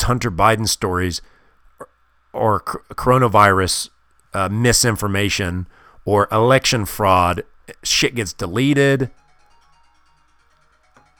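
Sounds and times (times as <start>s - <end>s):
speech: 0.0s - 9.2s
work phone ringing with electronic ringtone: 9.0s - 11.1s.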